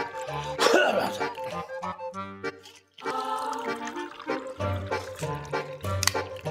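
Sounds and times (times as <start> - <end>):
person gulping and swallowing water: 0.0 - 6.4
person clearing throat: 0.4 - 1.3.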